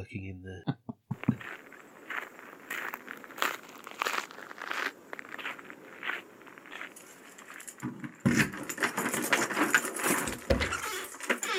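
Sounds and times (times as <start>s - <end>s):
speech: 0.0s - 0.8s
crunchy rustling and shuffling: 1.1s - 11.5s
keys jangling: 6.8s - 11.5s.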